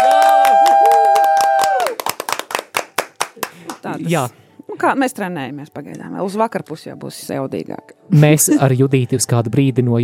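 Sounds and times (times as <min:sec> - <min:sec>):
small studio group cheering with a whoop: 0:00.0 - 0:02.4
few people clapping: 0:00.0 - 0:04.0
speech: 0:03.8 - 0:10.0.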